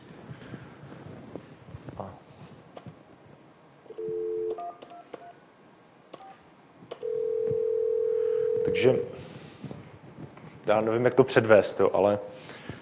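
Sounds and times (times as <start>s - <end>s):
desk phone held dial tone: 3.9s - 5.4s, 7.0s - 9.1s
desk phone keypad beeps: 4.0s - 5.4s
speech: 8.7s - 9.3s, 10.7s - 12.5s.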